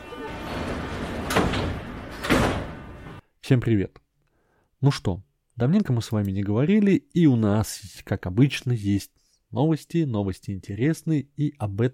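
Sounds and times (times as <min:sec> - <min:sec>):
metro train carriage rumbling: 0:00.0 - 0:03.2
metro train sliding doors closing: 0:00.0 - 0:03.2
speech: 0:03.5 - 0:04.0, 0:04.8 - 0:11.9.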